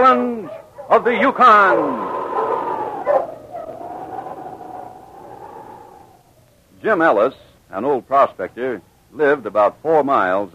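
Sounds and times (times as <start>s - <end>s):
speech: 0.1s - 2.5s, 6.8s - 10.5s
small mongrel dog barking: 0.4s - 1.0s, 2.4s - 3.8s
steady high whining tone: 1.1s - 6.6s.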